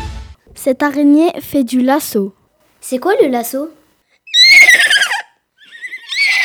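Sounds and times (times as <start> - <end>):
speech: 0.7 - 3.8
horse neighing with shrill descending whinny: 4.3 - 6.4.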